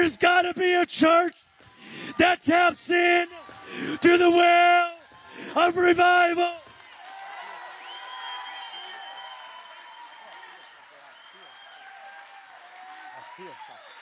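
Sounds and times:
speech: 0:00.1 - 0:06.6
crowd clapping: 0:01.2 - 0:13.9.

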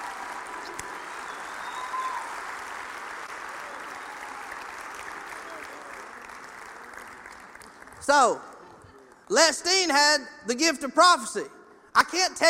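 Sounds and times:
church audience applauding: 0:00.0 - 0:09.3
speech: 0:08.0 - 0:08.5, 0:09.3 - 0:12.4.

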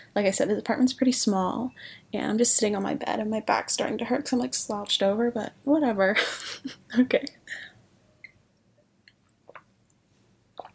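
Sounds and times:
speech: 0:00.2 - 0:07.7
person sipping water: 0:09.1 - 0:09.7, 0:10.6 - 0:10.7.

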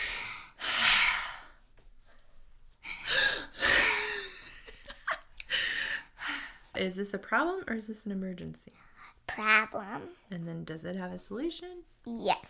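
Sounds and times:
deep breaths taken to calm down: 0:00.0 - 0:04.2, 0:05.4 - 0:06.8
speech: 0:06.8 - 0:12.4.

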